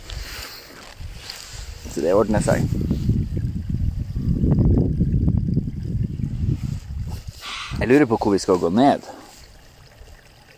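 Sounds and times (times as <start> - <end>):
water flowing in a river and brook: 0.0 - 10.5
speech: 2.0 - 3.1, 7.9 - 9.2.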